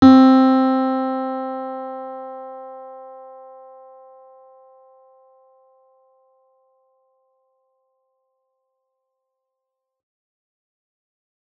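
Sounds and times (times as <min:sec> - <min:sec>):
C4 piano note: 0:00.0 - 0:04.0.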